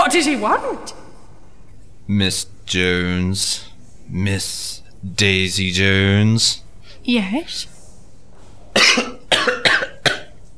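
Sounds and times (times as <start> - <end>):
speech: 0.1 - 1.1, 2.1 - 7.7
person coughing to clear the throat: 8.8 - 10.3.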